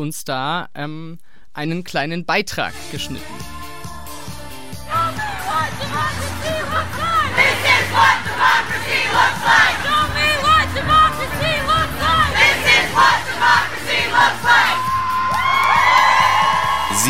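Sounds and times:
speech: 0.0s - 3.6s
large protest crowd chanting at a Women's March demonstration in Kassel Germany: 4.9s - 14.9s
protest crowd cheering and whooping: 4.9s - 17.0s.

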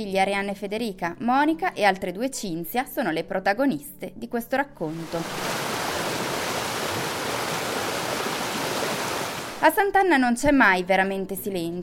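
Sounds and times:
speech: 0.0s - 5.6s, 9.6s - 11.8s
mountain torrent rushing: 4.9s - 9.6s.

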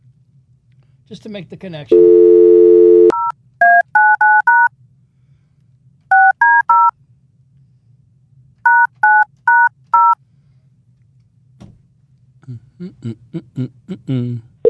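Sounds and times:
speech: 1.1s - 2.4s, 12.8s - 14.5s
electronic telephone keypad tones beeping as a mobile phone call is dialed: 2.0s - 4.7s, 6.1s - 6.9s, 8.7s - 10.2s.

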